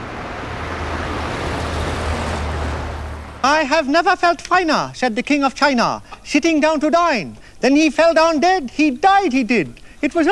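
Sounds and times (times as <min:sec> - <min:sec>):
bus approaching with engine rumble: 0:00.0 - 0:03.8
road traffic noise: 0:00.0 - 0:06.4
speech: 0:03.4 - 0:10.3.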